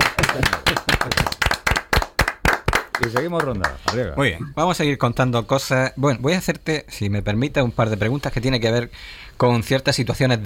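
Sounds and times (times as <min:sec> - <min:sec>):
applause as an ovation for a quiz show contestant: 0:00.0 - 0:04.0
speech: 0:03.0 - 0:10.4.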